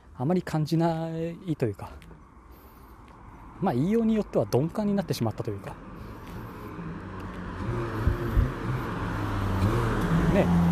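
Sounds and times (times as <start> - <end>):
speech: 0.2 - 2.2, 3.6 - 5.9, 10.3 - 10.7
automatic car engine rumbling and revving while driven aggressively past: 5.9 - 10.7.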